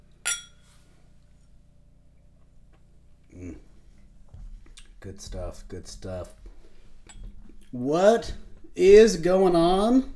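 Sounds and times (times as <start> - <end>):
quiet room hum: 0.0 - 10.1
two glasses clinking in a toast: 0.3 - 0.6
speech: 5.0 - 6.4, 7.7 - 10.1.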